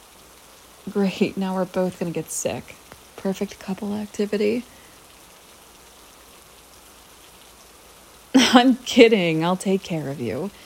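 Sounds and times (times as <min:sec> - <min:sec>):
pouring rain: 0:00.0 - 0:10.6
speech: 0:00.9 - 0:04.8, 0:08.5 - 0:10.6.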